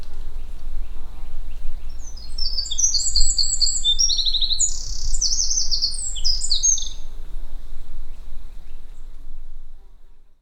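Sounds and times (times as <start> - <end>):
Eurasian wren singing: 0.0 - 9.1.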